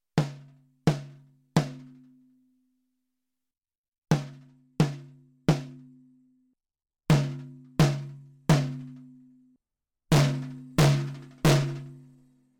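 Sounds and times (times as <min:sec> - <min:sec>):
clean steel snare drum: 0:00.2 - 0:02.0, 0:04.1 - 0:05.8, 0:07.1 - 0:09.0, 0:10.1 - 0:12.0.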